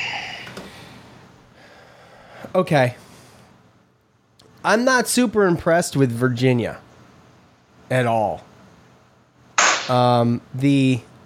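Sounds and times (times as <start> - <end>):
speech: 2.5 - 3.0, 4.6 - 6.8, 7.9 - 8.5, 9.9 - 11.2
loud sharp pop: 9.6 - 10.0.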